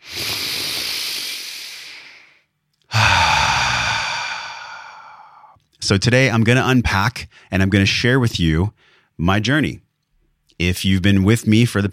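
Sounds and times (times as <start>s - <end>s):
deep breath: 0.0s - 5.6s, 8.8s - 9.2s
speech: 5.9s - 9.8s, 10.6s - 11.9s.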